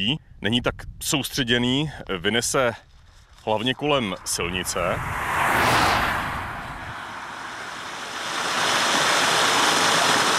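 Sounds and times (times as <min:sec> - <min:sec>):
speech: 0:00.0 - 0:05.3
stream water rushing: 0:05.3 - 0:10.3.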